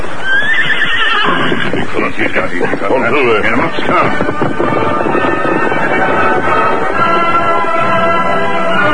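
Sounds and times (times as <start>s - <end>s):
horse whinnying and neighing: 0.2s - 2.8s
horse hooves clip-clopping on a coast trail: 0.3s - 8.9s.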